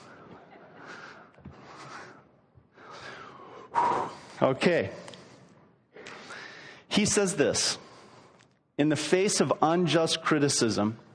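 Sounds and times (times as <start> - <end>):
heavy labored breathing after exertion: 0.0 - 6.9
speech: 4.4 - 5.0, 7.0 - 7.8, 8.8 - 11.1.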